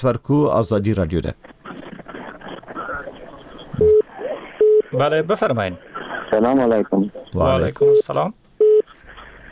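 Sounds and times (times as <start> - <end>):
speech: 0.0 - 1.6, 4.9 - 8.4
telephone busy tone after call disconnects: 3.8 - 4.0, 8.6 - 8.8.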